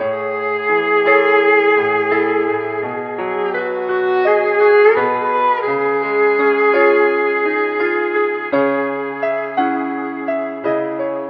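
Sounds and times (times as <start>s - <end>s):
sad piano: 0.0s - 11.2s
sad strings: 0.0s - 11.2s.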